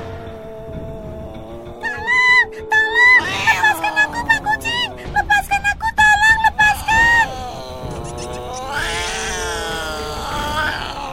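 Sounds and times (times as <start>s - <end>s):
voice imitating a mouse screaming for help: 1.7s - 5.4s, 6.2s - 11.1s.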